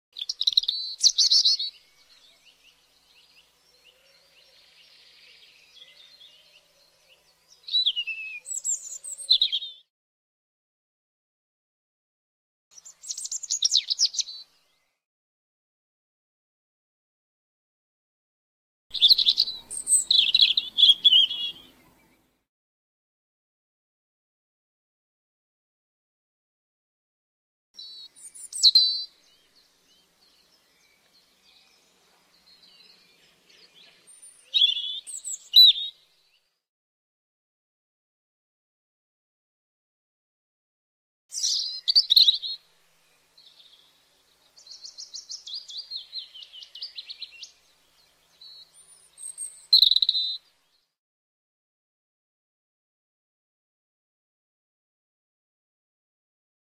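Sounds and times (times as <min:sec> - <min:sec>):
robin singing: 0:00.2 - 0:09.9, 0:12.8 - 0:14.9, 0:18.9 - 0:22.3, 0:27.8 - 0:36.5, 0:41.3 - 0:50.8.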